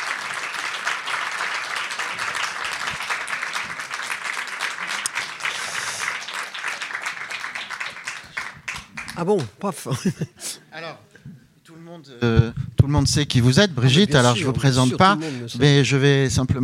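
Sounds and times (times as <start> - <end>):
applause from a large crowd: 0.0 - 9.5
speech: 9.2 - 10.6, 12.1 - 16.6.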